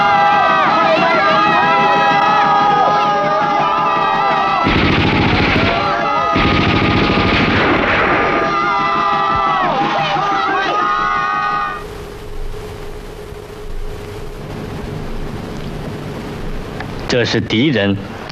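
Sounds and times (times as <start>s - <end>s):
crowd shouting: 0.0s - 11.8s
steady noisy rumble: 0.0s - 18.2s
scattered pops: 0.4s - 17.2s
rapid bursts of gunfire: 4.6s - 10.0s
speech: 17.2s - 18.2s.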